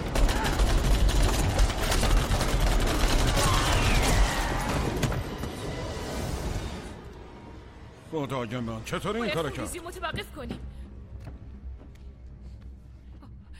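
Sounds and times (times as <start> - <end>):
volley of gunshots fired on command: 0.0 - 5.5
speech: 8.2 - 10.8.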